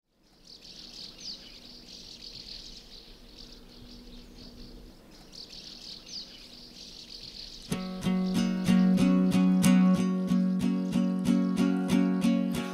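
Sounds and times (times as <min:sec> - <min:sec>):
birdsong and chirping: 0:00.1 - 0:12.7
soft outdoor ambience: 0:00.1 - 0:12.7
song intro with rhythmic strums and sustained tones played from a recording: 0:07.7 - 0:12.7.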